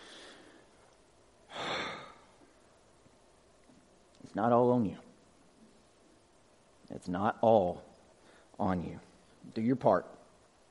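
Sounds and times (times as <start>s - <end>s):
deep breathing during a guided breathing exercise: 0.0s - 0.9s, 1.5s - 2.6s, 8.1s - 8.6s
speech: 4.4s - 5.1s, 6.9s - 7.9s, 8.6s - 10.2s.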